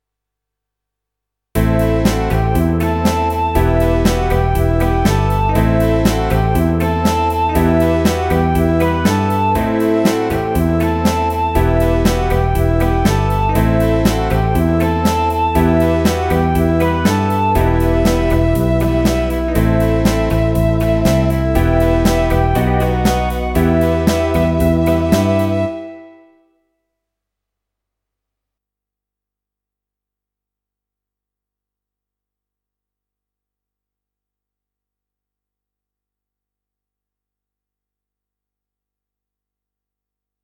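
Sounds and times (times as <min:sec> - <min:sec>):
E minor synth riff hit at 120: 0:01.6 - 0:25.8.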